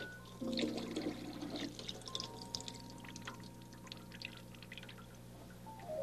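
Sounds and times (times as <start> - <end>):
water drips: 0.2 - 5.9
water splashing and gurgling in a clogged sink basin: 0.4 - 5.2.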